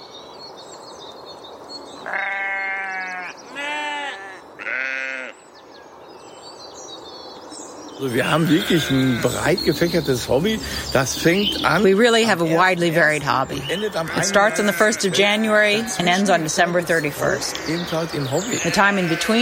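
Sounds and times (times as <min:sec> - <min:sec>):
soft outdoor hiss: 0:00.0 - 0:19.4
sheep bleating: 0:02.0 - 0:05.4, 0:08.2 - 0:09.5, 0:13.7 - 0:16.4, 0:18.4 - 0:19.4
speech: 0:08.0 - 0:19.4.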